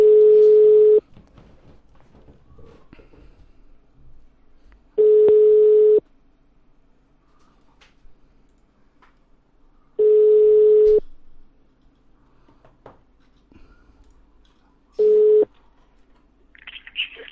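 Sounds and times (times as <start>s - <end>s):
telephone line tones as a number is dialed on a call: 0.0s - 1.0s, 5.0s - 6.0s, 10.0s - 11.0s, 15.0s - 15.5s
faint low noise: 0.0s - 17.3s.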